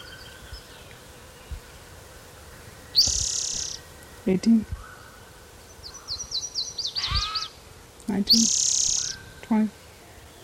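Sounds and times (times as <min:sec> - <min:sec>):
warbler singing a high rapid buzzy trill: 0:02.9 - 0:09.5
speech: 0:04.2 - 0:04.8, 0:08.1 - 0:08.6, 0:09.5 - 0:09.8.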